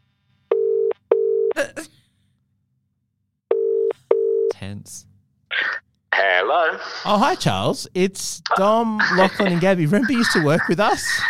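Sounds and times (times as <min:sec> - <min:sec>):
outgoing phone call ringing tone: 0:00.5 - 0:01.6, 0:03.5 - 0:04.5
speech: 0:06.5 - 0:11.2
laughter: 0:09.0 - 0:11.2.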